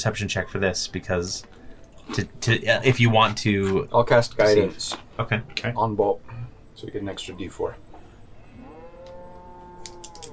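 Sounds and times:
speech: 0.0s - 7.9s
long low cow moo: 8.4s - 10.3s.

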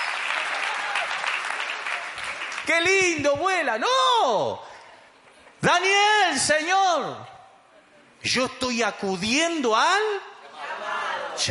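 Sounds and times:
audience applauding: 0.0s - 3.2s
speech: 2.6s - 4.7s, 5.6s - 7.3s, 8.2s - 10.3s.

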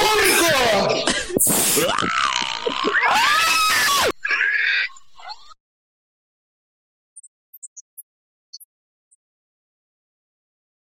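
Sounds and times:
pig grunting squeal: 0.2s - 5.6s
laughter: 0.4s - 4.1s.

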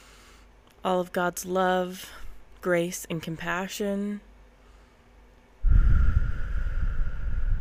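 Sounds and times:
deep inhale: 0.0s - 0.5s, 4.6s - 7.5s
speech: 0.8s - 4.3s.

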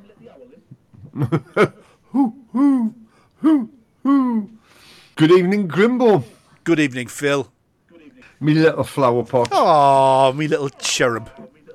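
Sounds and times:
speech: 0.4s - 2.3s, 5.2s - 7.6s, 8.4s - 11.4s
laughter: 0.8s - 4.4s
person imitating owl hoots: 2.1s - 4.6s.

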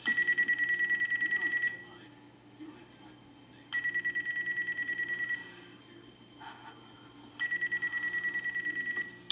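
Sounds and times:
phone ringing with a rapid electronic trill: 0.0s - 1.9s, 3.7s - 5.6s, 7.4s - 9.2s
low murmur: 0.0s - 9.2s.

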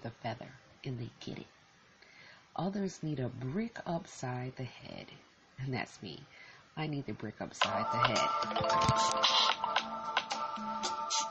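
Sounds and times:
speech: 0.0s - 1.6s, 2.6s - 9.6s
mobile phone ringtone playing a bright looping electronic melody: 7.8s - 11.2s.

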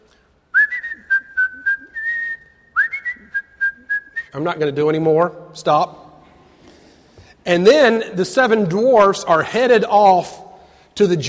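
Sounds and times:
person whistling a bright bouncy melody: 0.5s - 4.4s
speech: 4.4s - 6.0s, 7.5s - 10.4s, 11.0s - 11.2s.

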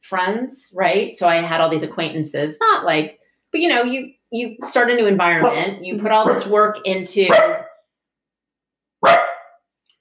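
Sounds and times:
speech: 0.1s - 7.6s
dog barking: 5.4s - 6.5s, 7.3s - 7.8s, 9.0s - 9.6s.

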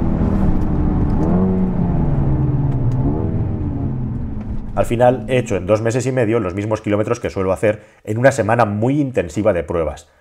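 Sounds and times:
road and wind noise: 0.0s - 5.7s
Mercedes A35 AMG sports car engine driven hard: 0.0s - 5.9s
speech: 4.8s - 10.2s.

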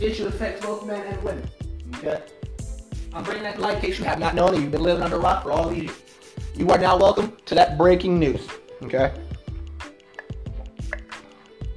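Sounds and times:
speech: 0.0s - 2.5s, 3.1s - 9.3s
person drinking water in wet gulps and swallows: 10.1s - 11.2s.

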